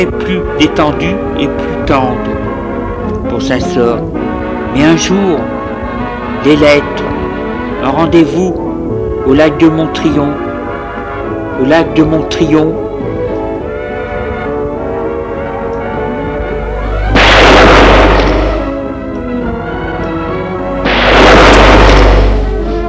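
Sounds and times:
speech: 0:00.0 - 0:02.4, 0:03.2 - 0:05.5, 0:06.4 - 0:07.0, 0:07.8 - 0:08.6, 0:09.2 - 0:10.4, 0:11.6 - 0:12.8
continuous sound: 0:00.0 - 0:22.8
gunshots: 0:17.0 - 0:18.8, 0:20.8 - 0:22.6.

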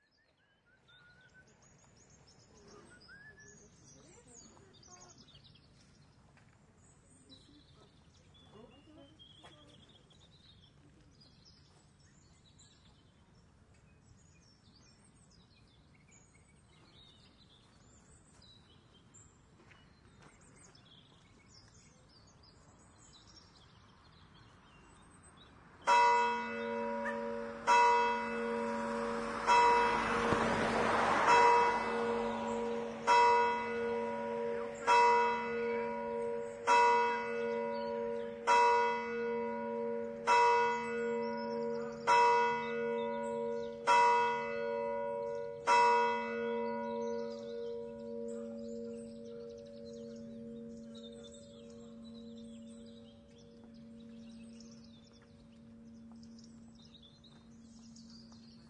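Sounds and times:
bells in Aureilhan: 0:25.9 - 0:58.6.

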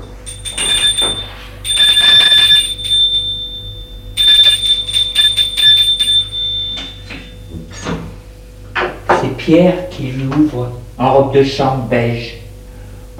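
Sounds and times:
electric doorbell ringing at a small furnished apartment: 0:00.0 - 0:07.6
speech: 0:09.5 - 0:12.4.

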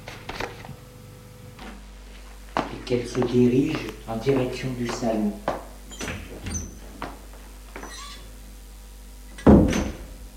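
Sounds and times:
speech: 0:02.9 - 0:05.6
living room door swinging shut with a thump: 0:05.9 - 0:06.8, 0:09.4 - 0:10.2.

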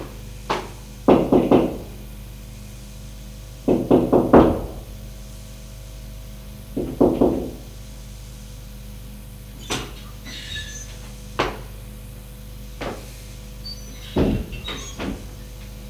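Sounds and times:
knocking on a wooden bedroom door: 0:00.5 - 0:02.0, 0:03.7 - 0:04.8, 0:06.8 - 0:07.6.

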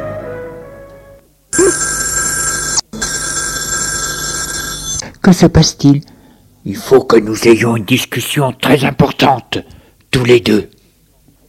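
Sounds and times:
loud telephone bell ringing with a harsh metallic jangle: 0:01.6 - 0:05.0
speech: 0:05.3 - 0:10.7.

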